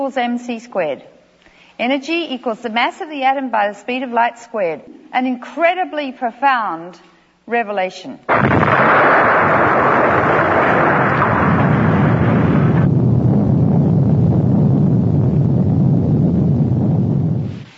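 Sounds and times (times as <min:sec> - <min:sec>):
speech: 0:00.0 - 0:01.2, 0:01.8 - 0:09.6
huge nuclear bomb blast: 0:08.3 - 0:17.6
deep sustained rumble: 0:08.5 - 0:17.6.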